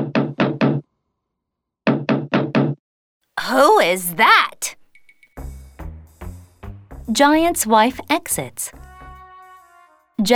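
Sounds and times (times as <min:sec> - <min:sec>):
firm knocks on a wooden door: 0:00.0 - 0:00.8, 0:01.9 - 0:02.8
speech: 0:03.5 - 0:04.8, 0:07.1 - 0:08.8, 0:10.2 - 0:10.3.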